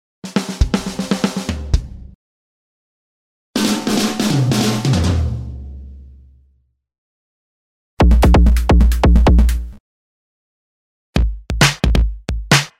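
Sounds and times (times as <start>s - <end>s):
drum: 0.2s - 2.2s, 3.6s - 5.9s, 8.0s - 9.8s, 11.2s - 12.7s.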